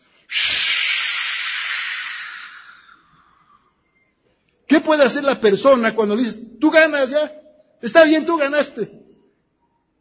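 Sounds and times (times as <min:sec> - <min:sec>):
balloon deflating with a rush of air: 0:00.3 - 0:02.8
speech: 0:04.8 - 0:09.0.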